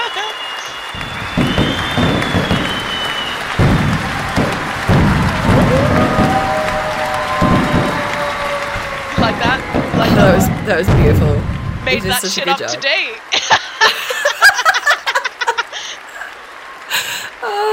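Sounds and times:
crowd whistles: 0.0s - 12.2s
big crowd applauding wildly: 0.0s - 17.7s
laughter: 5.7s - 11.0s, 12.0s - 17.5s
speech: 10.1s - 13.6s.

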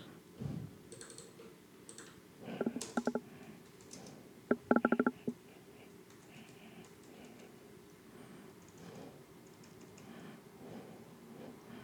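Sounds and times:
typing on a computer keyboard: 0.9s - 5.4s, 6.0s - 7.5s, 8.6s - 8.8s, 9.4s - 10.1s.

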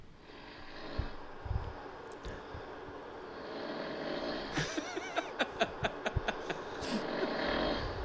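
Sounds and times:
man snoring loudly with rattling rumble: 0.2s - 1.3s, 3.2s - 5.4s, 6.7s - 8.0s
laughter: 4.5s - 7.3s.

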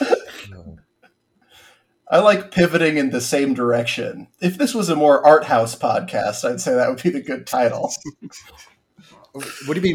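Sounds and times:
harsh cough: 0.0s - 0.6s
speech: 2.1s - 9.9s.

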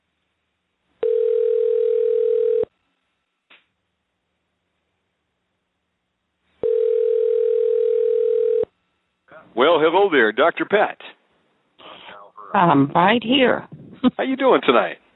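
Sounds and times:
telephone line tone while a call is being placed: 1.0s - 2.7s, 6.6s - 8.7s
speech: 9.5s - 11.2s, 12.5s - 15.0s.

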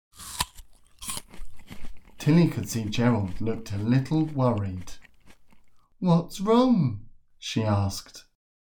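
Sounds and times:
crunchy munching of breakfast food: 0.1s - 6.0s
speech: 2.2s - 5.0s, 6.0s - 8.3s.

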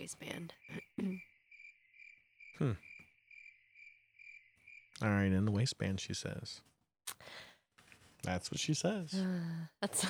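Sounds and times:
speech: 0.0s - 1.3s, 2.6s - 2.9s, 5.0s - 7.4s, 8.2s - 10.0s
cicadas and other insects droning in the woods: 0.6s - 4.9s.

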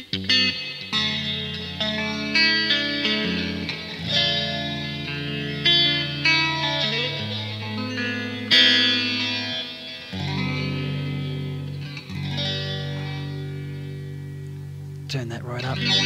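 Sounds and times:
electric guitar played through a phaser with reverb and heavy delay: 0.0s - 16.0s.

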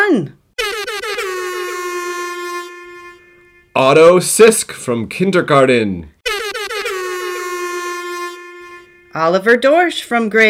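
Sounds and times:
speech: 0.1s - 0.4s, 3.8s - 6.2s, 9.2s - 10.4s
loud air horn blasts: 0.6s - 4.2s, 6.2s - 9.9s.

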